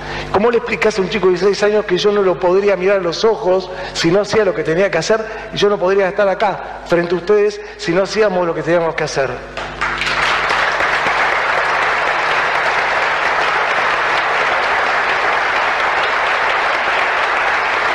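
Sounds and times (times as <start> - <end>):
speech: 0.3 - 9.8
large crowd applauding: 9.6 - 17.9.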